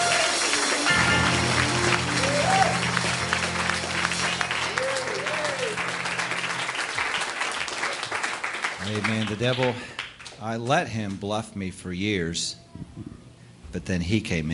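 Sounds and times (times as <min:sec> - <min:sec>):
scattered cheers at an evening worship service: 0:00.0 - 0:09.8
large crowd clapping in praise at an evening worship service: 0:00.0 - 0:11.2
speech: 0:09.0 - 0:13.1, 0:13.7 - 0:14.5.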